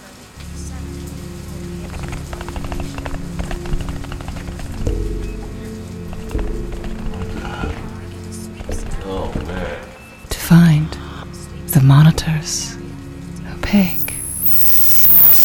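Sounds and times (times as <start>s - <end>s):
steady rain pattering on a hard surface: 0.0s - 9.8s
deep continuous low hum: 0.4s - 15.4s.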